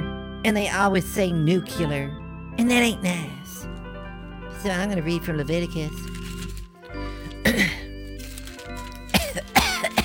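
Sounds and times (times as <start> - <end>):
speech: 0.4 - 3.7, 4.6 - 6.3
person coughing into microphone: 7.3 - 7.9, 9.1 - 10.0.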